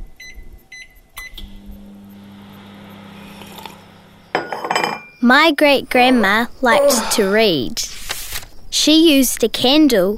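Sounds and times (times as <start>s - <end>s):
microwave oven beeping: 0.2s - 5.3s
microwave oven humming while cooking cakes: 1.2s - 7.1s
speech: 5.2s - 7.9s, 8.7s - 10.1s.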